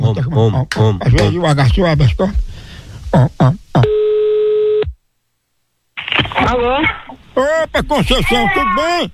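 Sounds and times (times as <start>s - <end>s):
speech: 0.1s - 2.5s, 3.1s - 3.9s, 6.4s - 9.1s
telephone ringback tone for an outgoing call: 3.9s - 4.9s.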